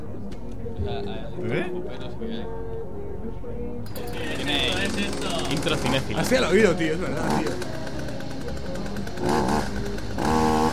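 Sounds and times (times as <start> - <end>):
speech: 0.8 - 7.8
chainsaw-like engine buzzing and revving: 3.9 - 10.7.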